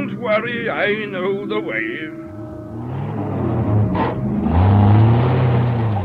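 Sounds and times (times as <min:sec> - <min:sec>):
car engine revving and pulling away: 0:00.0 - 0:06.0
speech: 0:00.2 - 0:02.3.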